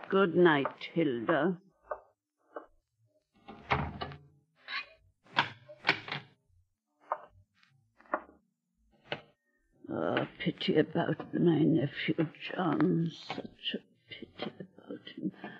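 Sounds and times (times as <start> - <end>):
speech: 0.1 - 1.6, 9.9 - 15.5
house doors shutting with heavy wooden thuds: 3.4 - 4.2.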